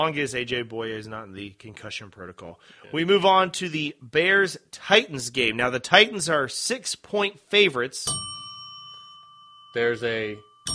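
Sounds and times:
speech: 0.0 - 8.3, 9.7 - 10.7
bell ringing with a sustained metallic tone: 8.1 - 10.7.

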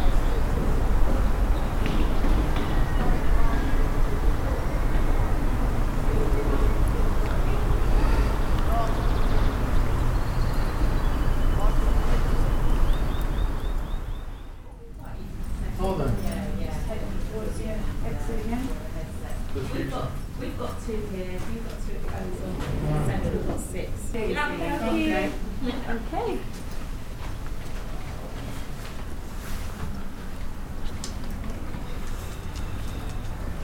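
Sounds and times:
passing vehicles: 0.0 - 25.5
crowd murmur in a busy square: 0.0 - 26.5
voices chattering: 0.0 - 26.5
steady low traffic rumble in a busy square: 0.0 - 33.6.

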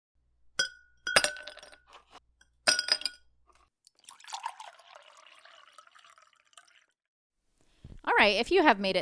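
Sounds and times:
glasses clinking in a toast: 0.6 - 1.8, 2.7 - 3.2
soft fizzy liquid-like rustle: 4.0 - 7.0
speech: 8.2 - 9.0.

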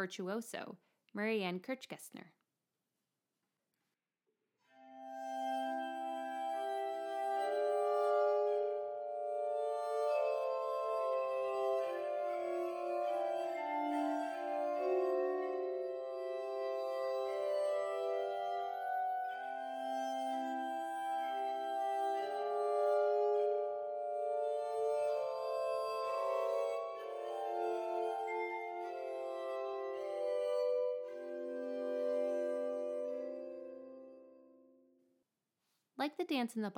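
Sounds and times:
speech: 0.0 - 2.4, 36.2 - 36.7
glass harmonica music: 5.6 - 34.4.

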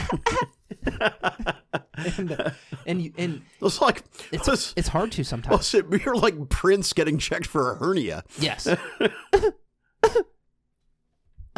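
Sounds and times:
person coughing in a fit of harsh hacking coughs: 0.0 - 0.6, 8.4 - 10.4
laughter: 0.0 - 6.5, 8.4 - 9.5
speech: 0.1 - 10.2.

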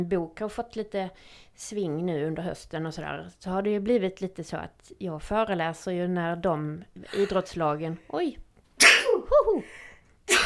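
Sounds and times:
speech: 0.0 - 8.4
sharp explosive sneezes: 8.8 - 9.6.

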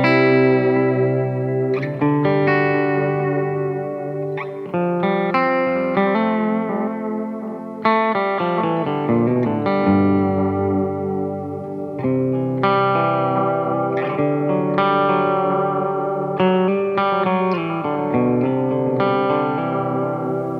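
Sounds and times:
electric guitar with tremolo arm, delay and reverb playing chords: 0.0 - 20.5.

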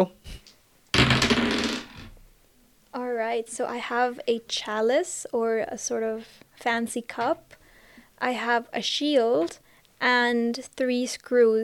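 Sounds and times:
speech: 0.0 - 0.4, 3.1 - 7.6, 8.2 - 11.6
story dice tumbling across a hard tabletop: 1.0 - 2.2.

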